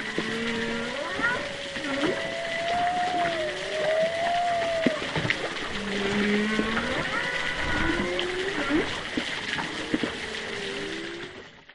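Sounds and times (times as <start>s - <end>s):
fainter higher humpback whale cries underwater: 0.0s - 9.0s
hiss of choppy water movement underwater: 0.0s - 11.4s
humpback whale calls underwater in east Australia: 0.0s - 11.5s.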